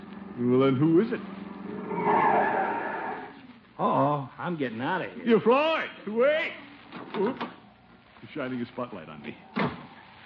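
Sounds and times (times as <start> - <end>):
speech: 0.4 - 2.6, 3.8 - 7.5, 8.2 - 9.5
car tires screeching while skidding to a stop: 1.6 - 3.4.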